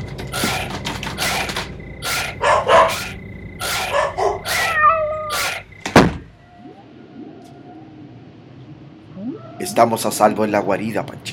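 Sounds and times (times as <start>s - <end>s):
steady low hum: 0.0s - 9.6s
kitten squealing: 0.4s - 5.7s
kitten meowing: 4.5s - 5.4s
speech: 9.8s - 11.3s.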